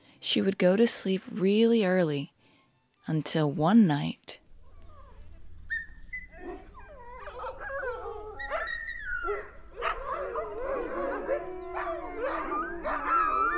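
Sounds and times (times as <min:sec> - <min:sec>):
speech: 0:00.2 - 0:02.3, 0:03.1 - 0:04.4
several dogs barking, yipping and howling: 0:04.8 - 0:13.5.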